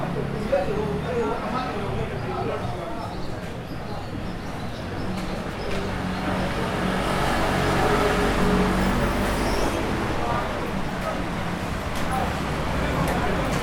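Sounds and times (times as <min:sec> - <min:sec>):
indistinct murmur of voices: 0:00.0 - 0:13.6
passing traffic on a busy street: 0:00.0 - 0:13.6.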